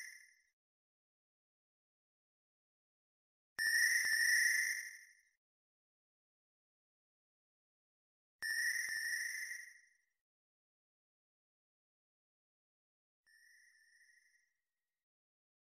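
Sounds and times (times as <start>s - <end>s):
crickets ringtone for Android phone: 3.6s - 5.1s, 8.4s - 10.0s, 13.3s - 14.5s.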